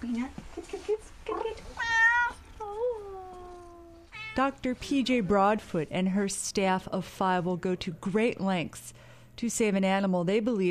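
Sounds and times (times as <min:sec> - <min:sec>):
speech: 0:00.0 - 0:00.5, 0:04.4 - 0:10.7
cat meowing: 0:01.8 - 0:02.6, 0:03.3 - 0:04.4.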